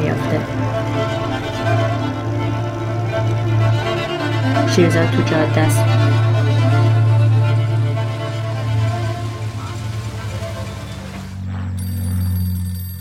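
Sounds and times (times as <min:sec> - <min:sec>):
low droning musical background: 0:00.0 - 0:12.9
speech: 0:04.8 - 0:06.0
telephone ringing: 0:11.8 - 0:12.9.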